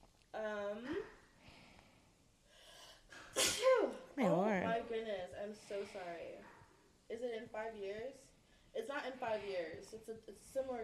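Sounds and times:
speech: 0.4s - 1.2s, 5.0s - 10.8s
person sneezing: 3.2s - 3.9s.

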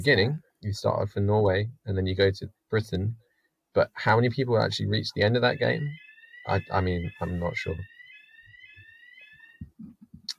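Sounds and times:
speech: 0.0s - 8.0s
fire alarm test ringing with high electronic tone: 5.8s - 9.6s.

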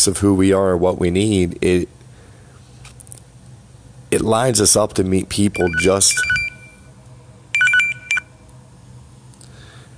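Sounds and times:
speech: 0.0s - 2.0s, 4.1s - 6.4s
low hum: 0.0s - 9.9s
phone's electronic ringtone beeping: 5.6s - 6.9s, 7.6s - 8.3s.

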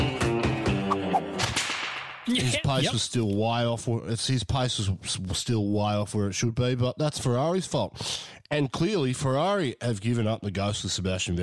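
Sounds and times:
steady musical backing: 0.0s - 1.4s
sharp loud whip cracks: 1.1s - 2.3s
speech: 2.3s - 11.4s.

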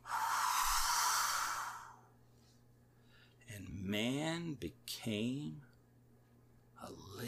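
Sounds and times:
person blowing out a long soft breath: 0.0s - 2.0s
speech: 3.9s - 5.7s, 6.8s - 7.2s.

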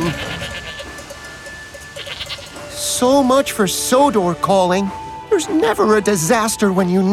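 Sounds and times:
goats bleating crossing a railway line at a level crossing: 0.0s - 1.0s, 2.0s - 2.7s
speech: 3.0s - 7.1s.

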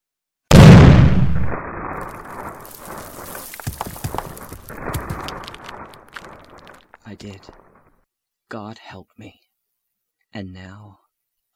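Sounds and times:
loud explosion with deep booming rumble: 0.5s - 6.9s
building collapsing with crumbling crackling debris and crashes: 0.6s - 7.9s
speech: 7.2s - 7.7s, 8.5s - 9.4s, 10.3s - 11.0s.

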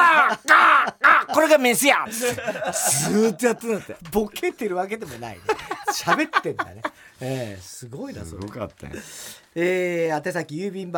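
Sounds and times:
man's voice imitating crow caws: 0.0s - 1.5s
laughter: 0.0s - 4.3s, 5.0s - 7.0s
speech: 1.4s - 10.9s.

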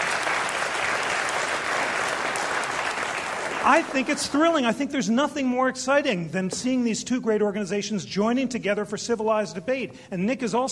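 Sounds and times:
audience applause: 0.0s - 4.4s
speech: 3.7s - 10.7s.

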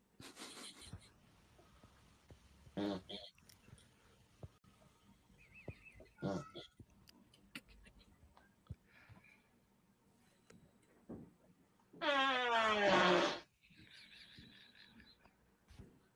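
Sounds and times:
loud drawn-out fart: 2.8s - 3.2s, 12.0s - 13.5s.

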